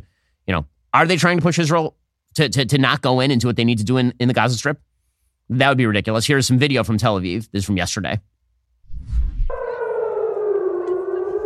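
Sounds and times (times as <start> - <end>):
speech: 0.5 - 4.9, 5.5 - 8.3
low rumble: 8.9 - 9.7
civil defense sirens wailing in Tel Aviv: 9.5 - 11.4.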